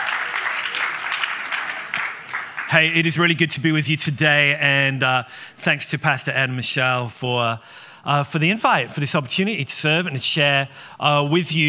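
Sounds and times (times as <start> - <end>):
audience applauding the band and musicians at a service: 0.0 - 3.1
speech: 2.7 - 11.6.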